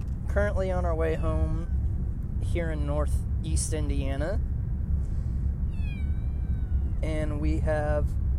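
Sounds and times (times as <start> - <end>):
steady low rumble: 0.0 - 8.3
speech: 0.4 - 1.8, 2.4 - 4.5, 7.0 - 8.2
kitten giving a thin high-pitched mew: 5.7 - 7.2.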